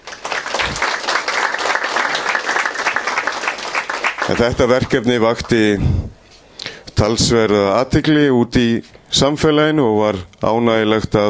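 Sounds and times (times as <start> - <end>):
audience applause in a hall for a photography contest winner: 0.0 - 5.7
speech: 4.3 - 6.2, 7.0 - 11.2.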